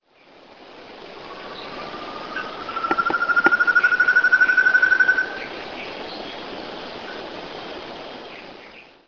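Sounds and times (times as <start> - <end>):
Chamaeza ruficauda vocalizing: 1.2 - 5.9.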